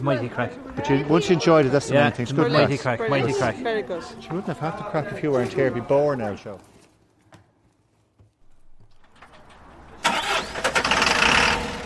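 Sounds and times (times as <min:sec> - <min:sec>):
speech: 0:00.0 - 0:06.7
large diesel bus engine starting: 0:09.0 - 0:11.8.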